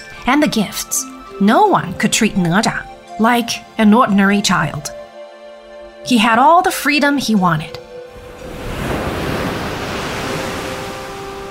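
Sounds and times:
speech: 0.2 - 5.0, 6.0 - 7.8
ocean waves: 7.9 - 11.4.

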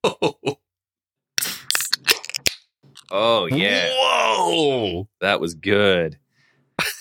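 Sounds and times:
large crowler can of beer cracked open: 1.4 - 3.2
speech: 3.2 - 6.2.

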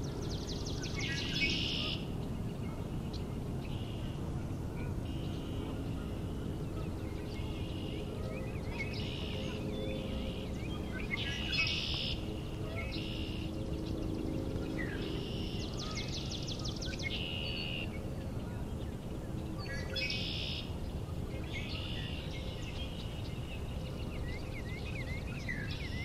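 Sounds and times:
whistled bird song resembling a Northern Cardinal: 0.0 - 4.2, 4.8 - 20.8, 21.4 - 26.0
steady low outdoor rumble: 0.0 - 26.0.

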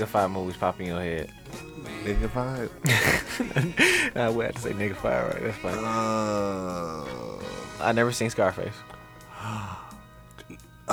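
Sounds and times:
speech: 0.0 - 9.7
laughter: 1.6 - 7.4
loud breathy gasp of surprise: 3.3 - 4.2, 9.3 - 10.0.

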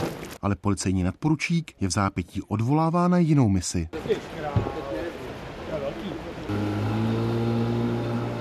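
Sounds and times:
outdoor noise: 0.0 - 8.3
speech: 0.4 - 4.7
firefighters' powerful motorboat engine droning on a flooded river: 6.4 - 8.3.

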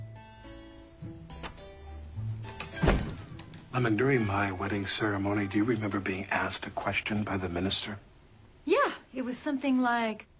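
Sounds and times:
heavy door being pushed shut: 1.3 - 1.7, 2.4 - 4.1
speech: 3.8 - 8.1, 9.2 - 10.3.

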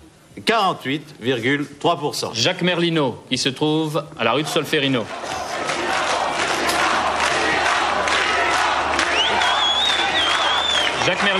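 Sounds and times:
speech: 0.4 - 5.4, 11.1 - 11.3
dense crowd roaring and cheering at an election victory celebration: 4.4 - 11.3
shouts rising out of the crowd din: 5.1 - 10.8
shrill whistle: 9.0 - 11.0.

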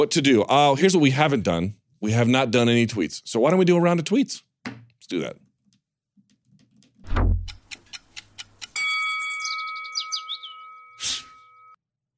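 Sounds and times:
speech: 0.0 - 4.5, 5.1 - 5.4
low thump: 7.0 - 7.5
clock ticking: 7.2 - 8.8
sustained bright chiming tone with fluttering notes: 8.8 - 11.8.

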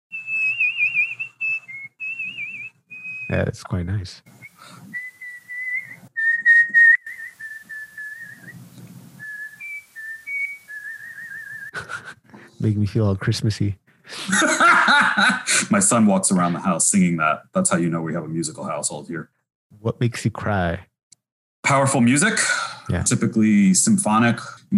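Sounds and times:
person whistling a lilting melody: 0.1 - 3.4, 4.3 - 8.6, 9.2 - 11.8
speech: 3.3 - 4.8, 12.6 - 14.5, 15.2 - 20.9, 21.7 - 24.7
laughter: 11.7 - 12.4, 14.1 - 15.7.

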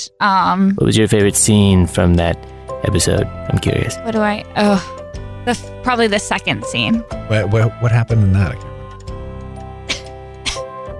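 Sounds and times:
speech: 0.0 - 8.7
person coughing: 9.9 - 10.7.

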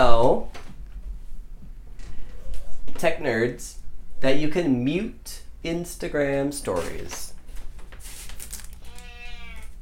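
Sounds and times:
speech: 3.0 - 7.3
soft rustling noise: 6.7 - 9.8
cat meowing: 8.8 - 9.8.

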